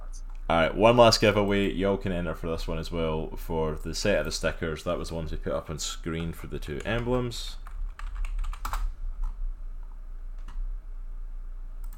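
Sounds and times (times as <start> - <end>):
speech: 0.1 - 7.6
fingers typing on a computer keyboard: 6.8 - 9.4.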